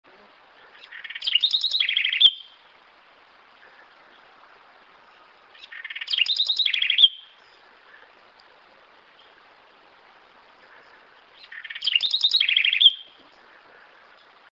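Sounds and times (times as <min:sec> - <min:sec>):
Troglodytes musculus singing: 0:00.7 - 0:02.7, 0:05.0 - 0:08.0, 0:11.2 - 0:14.4.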